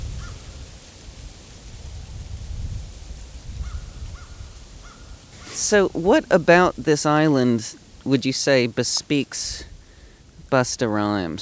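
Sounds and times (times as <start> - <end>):
crows cawing on a small island in winter: 0.2 - 0.4, 3.6 - 5.6
speech: 5.6 - 9.7, 10.5 - 11.3.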